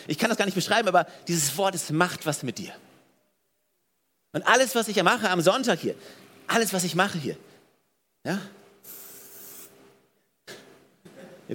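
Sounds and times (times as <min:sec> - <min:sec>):
speech: 0:00.0 - 0:02.9, 0:04.4 - 0:07.5, 0:08.2 - 0:09.0
spray bottle misting: 0:08.8 - 0:09.8.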